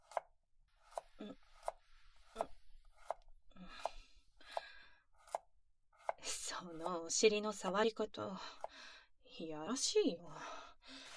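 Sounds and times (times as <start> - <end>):
kitchen knife chopping on a cutting board: 0.0 - 1.8, 2.4 - 3.2, 5.2 - 6.2
speech: 1.2 - 1.4, 7.1 - 8.6, 9.4 - 10.5.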